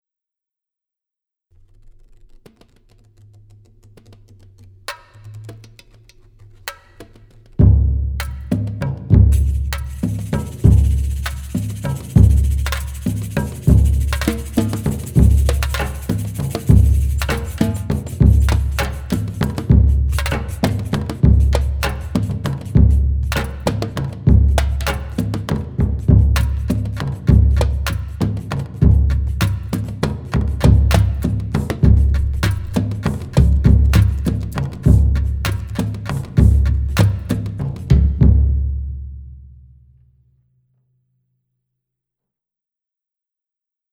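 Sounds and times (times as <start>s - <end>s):
surdo drum solo: 6.7s - 39.1s.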